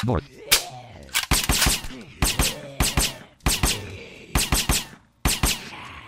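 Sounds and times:
rapid video game gunfire shooting at a zombie: 1.3 - 5.7.

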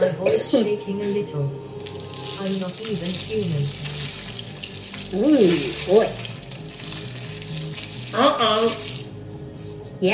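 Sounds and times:
speech: 0.0 - 4.0, 5.1 - 6.3, 8.1 - 8.9, 10.0 - 10.1
sizzling bubbling sound effect of a body melting into ooze: 1.8 - 9.3.

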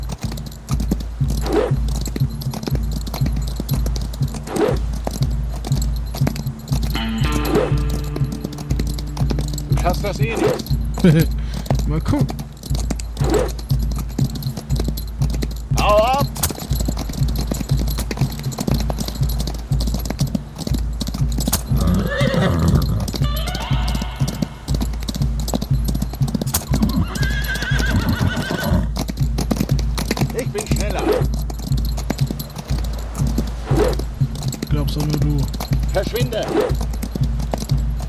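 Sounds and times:
horse hooves clip-clopping: 0.0 - 38.0
speech: 10.0 - 12.4
horse whinnying: 21.7 - 24.8, 26.6 - 29.0.

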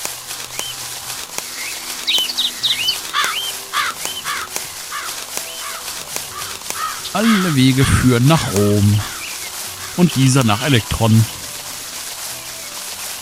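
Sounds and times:
soft wingbeats: 0.0 - 13.2
flock of birds with crow-like caws and sharper cries: 1.5 - 11.9
speech: 7.1 - 9.1, 10.0 - 11.4.

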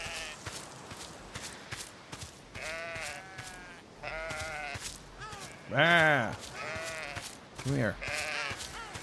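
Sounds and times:
distressed sheep bleating: 0.0 - 0.5, 2.5 - 9.0
speech: 5.7 - 6.5, 7.6 - 8.3.

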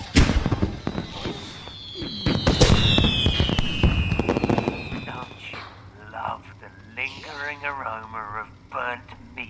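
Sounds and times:
fireworks bursting and crackling: 0.0 - 6.0
long high-pitched firework whistle sliding downward: 1.0 - 5.4.

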